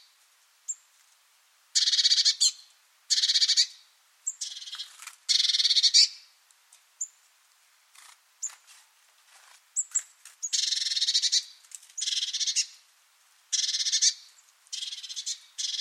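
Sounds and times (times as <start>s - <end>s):
harsh buzzy high-pitched bird calls: 1.8s - 6.3s, 9.8s - 12.8s, 13.5s - 15.7s.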